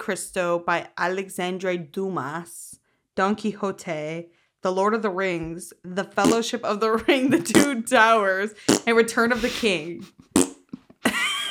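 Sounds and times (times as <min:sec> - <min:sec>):
speech: 0:00.0 - 0:10.3
buzzy fart noise blown with the lips: 0:10.3 - 0:10.9.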